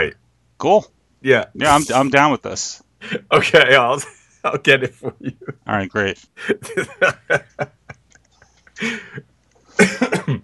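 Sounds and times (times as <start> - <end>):
speech: 0.0 - 7.8, 8.8 - 10.4
laughter: 3.0 - 5.7, 6.4 - 9.2
person coughing: 9.8 - 10.4.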